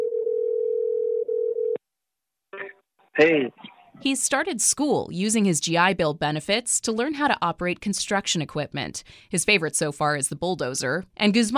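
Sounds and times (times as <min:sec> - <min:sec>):
telephone dial tone while calling someone: 0:00.0 - 0:01.8
speech: 0:02.6 - 0:11.5.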